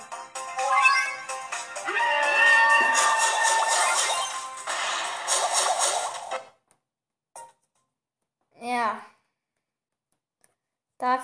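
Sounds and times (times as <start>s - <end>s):
video game bear spawning sound effects: 0.5s - 6.5s.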